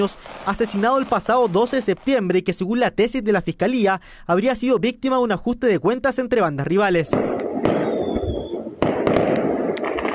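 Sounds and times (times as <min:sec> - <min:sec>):
fireworks crackling and bursting in the street at night: 0:00.0 - 0:02.6, 0:07.1 - 0:10.1
speech: 0:00.0 - 0:07.8
whistling tone: 0:07.8 - 0:08.6.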